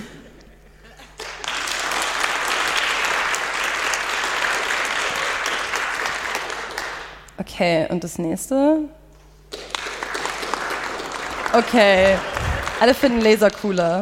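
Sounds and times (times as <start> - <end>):
crowd applauding: 1.1 - 7.2, 9.5 - 14.0
speech: 7.6 - 9.0, 11.6 - 14.0.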